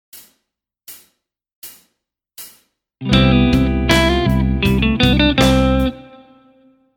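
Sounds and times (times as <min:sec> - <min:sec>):
Ionian mode lick: 0:03.0 - 0:06.5.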